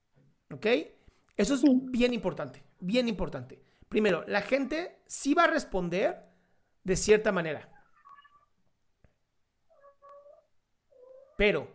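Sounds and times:
speech: 0:00.5 - 0:07.7, 0:11.4 - 0:11.7
cat meowing: 0:04.4 - 0:04.9, 0:07.7 - 0:08.6, 0:09.7 - 0:11.4.

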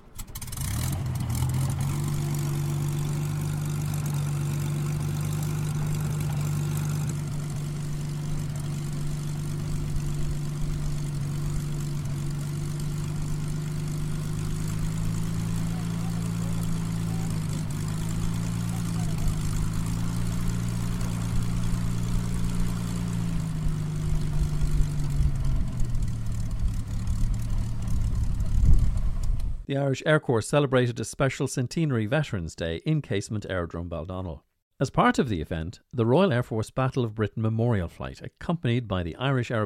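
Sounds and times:
Hawker Hurricane vintage piston aircraft engine powering up: 0:00.0 - 0:29.6
speech: 0:29.7 - 0:39.6.

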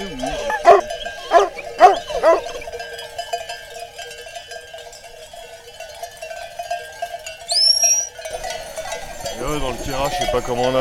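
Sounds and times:
dog whining to go outside: 0:00.0 - 0:02.6
speech: 0:10.3 - 0:10.8.

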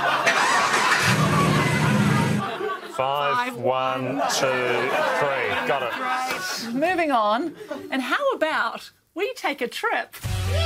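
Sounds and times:
laughter: 0:00.0 - 0:06.8
car engine with immobiliser cranking and starting: 0:00.1 - 0:02.5
speech: 0:03.0 - 0:10.6.

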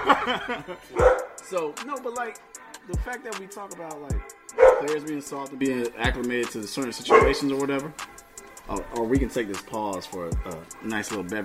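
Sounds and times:
laughter: 0:00.0 - 0:01.1
speech: 0:00.1 - 0:11.4
voices murmuring: 0:00.5 - 0:11.4
dog barking: 0:01.0 - 0:01.4, 0:04.5 - 0:05.1, 0:07.0 - 0:07.6.

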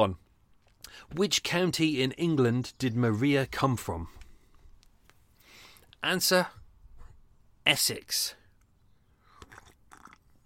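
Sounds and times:
speech: 0:00.0 - 0:00.2, 0:01.0 - 0:04.2, 0:06.0 - 0:06.6, 0:07.7 - 0:08.4
wet slurps from a sip of cold tea: 0:09.2 - 0:10.4.

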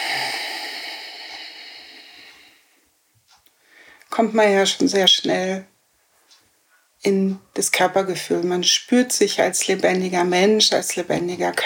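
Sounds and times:
deep exhale at the start of a yoga session: 0:00.0 - 0:02.8
speech: 0:04.2 - 0:05.7, 0:07.0 - 0:11.6.

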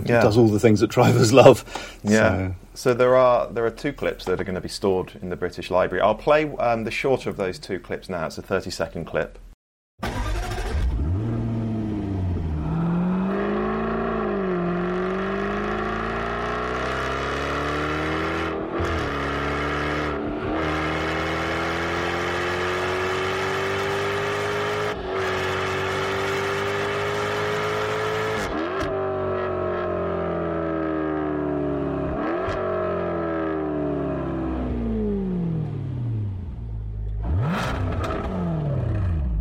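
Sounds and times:
speech: 0:00.1 - 0:09.4
F-Type sports car engine accelerating, decelerating and blipping: 0:10.1 - 0:39.3.

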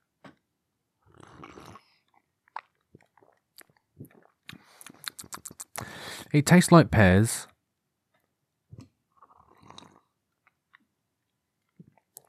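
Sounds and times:
breathy slurp of hot tea: 0:01.1 - 0:02.1, 0:04.0 - 0:06.2, 0:09.2 - 0:10.1
small wet mouth clicks and gulps: 0:01.1 - 0:06.3, 0:08.7 - 0:10.9, 0:11.7 - 0:12.2
speech: 0:06.3 - 0:07.5.

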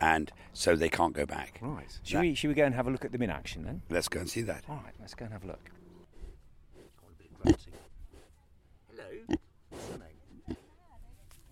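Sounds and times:
speech: 0:00.0 - 0:05.8, 0:07.4 - 0:07.8
pigs snuffling: 0:04.0 - 0:08.5, 0:09.2 - 0:11.5
pigs snorting: 0:06.0 - 0:08.4, 0:09.2 - 0:10.8
outdoor farm pigs oinking and grunting: 0:07.4 - 0:07.8, 0:09.2 - 0:10.7.

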